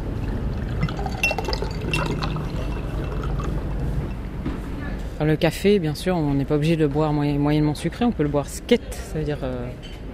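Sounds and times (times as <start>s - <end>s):
iced water pouring from a carafe into a glass: 0.2s - 4.3s
faint clinks: 0.2s - 4.4s
speech: 5.2s - 10.0s.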